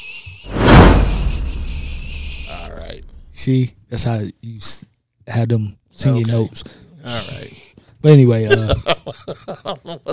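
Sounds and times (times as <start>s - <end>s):
swoosh sound effect: 0.5s - 3.4s
speech: 3.4s - 7.4s, 8.0s - 10.1s
laughter: 8.4s - 10.1s.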